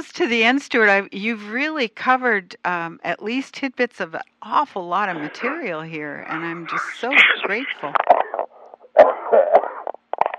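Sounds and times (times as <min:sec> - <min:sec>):
speech: 0:00.1 - 0:08.1
person coughing and spluttering: 0:09.0 - 0:09.9.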